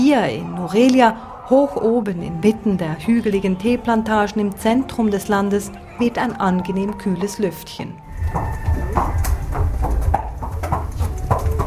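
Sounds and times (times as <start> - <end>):
speech: 0.1 - 10.0
racehorse stallion's hooves clip-clopping while being led to the stable: 8.0 - 11.6.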